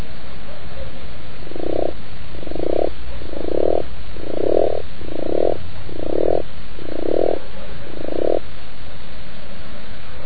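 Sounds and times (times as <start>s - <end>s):
steady hiss: 0.0s - 10.2s
frog croaking: 0.8s - 8.5s.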